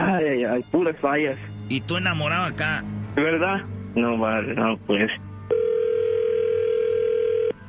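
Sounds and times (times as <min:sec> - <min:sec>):
speech: 0:00.5 - 0:05.2
telephone ringback tone while a number is called again: 0:05.5 - 0:07.6.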